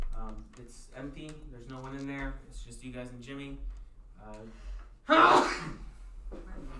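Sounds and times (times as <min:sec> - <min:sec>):
speech: 0:00.3 - 0:06.7
single loud sneeze: 0:05.1 - 0:05.9.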